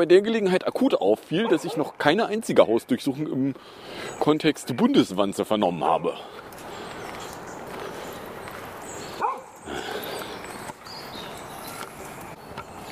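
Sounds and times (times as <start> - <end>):
speech: 0.0 - 6.4
noisy outdoor noise: 0.0 - 12.8
dog barking while passing by: 1.4 - 2.0, 9.2 - 9.6.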